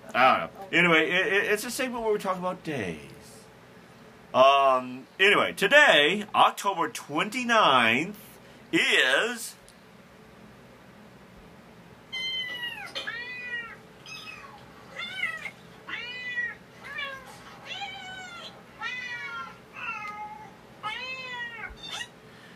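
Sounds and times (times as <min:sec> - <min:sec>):
speech: 0:00.2 - 0:03.2, 0:04.3 - 0:09.6
cat meowing with drawn-out wavering cries: 0:12.1 - 0:22.2.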